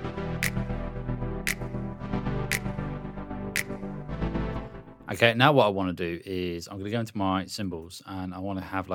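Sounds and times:
sustained chords opening a music intro: 0:00.0 - 0:05.1
crisp finger snaps: 0:00.4 - 0:00.8, 0:01.5 - 0:01.8, 0:02.5 - 0:02.8, 0:03.6 - 0:03.9
speech: 0:05.1 - 0:08.9.

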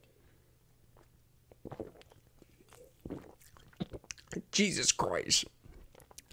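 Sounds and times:
lip smacks: 0:01.0 - 0:04.4, 0:05.7 - 0:06.3
person slurping a sour green apple drink: 0:01.5 - 0:04.4
speech: 0:04.6 - 0:05.6.

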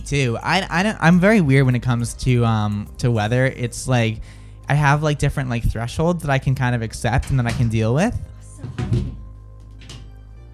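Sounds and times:
speech: 0:00.0 - 0:09.2
door slamming shut with a brief rattle: 0:08.6 - 0:10.2.

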